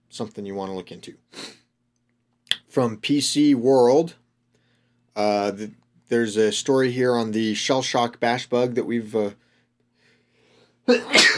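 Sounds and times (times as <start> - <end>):
speech: 0.1 - 1.4, 2.8 - 4.2, 5.2 - 9.4, 10.9 - 11.3
man with allergies sneezing: 10.9 - 11.3.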